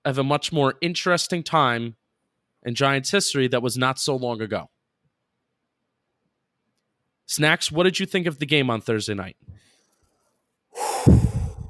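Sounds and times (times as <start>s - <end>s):
speech: 0.0s - 2.0s, 2.6s - 4.8s, 7.3s - 9.7s, 11.0s - 11.2s
very deep loud breath: 10.7s - 11.6s.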